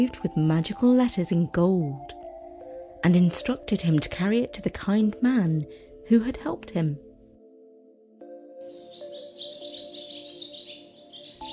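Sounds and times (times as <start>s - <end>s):
speech: 0.0s - 2.2s, 3.0s - 7.0s
small bird singing: 8.6s - 11.5s.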